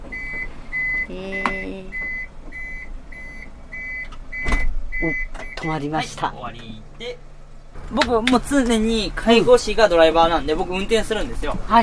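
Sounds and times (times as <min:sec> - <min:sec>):
motorized stretcher lift electronic warning beeps: 0:00.1 - 0:05.8
speech: 0:01.1 - 0:02.0, 0:05.0 - 0:07.3, 0:07.9 - 0:11.8.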